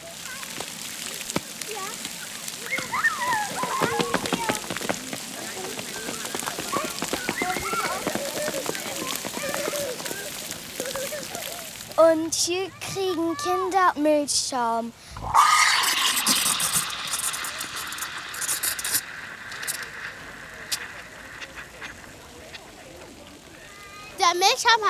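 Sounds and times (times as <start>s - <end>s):
splashing and spattering water from a splash play fountain: 0.0s - 12.2s, 15.6s - 24.8s
children chattering and calling: 0.0s - 14.0s
speech: 12.1s - 15.5s, 24.6s - 24.8s.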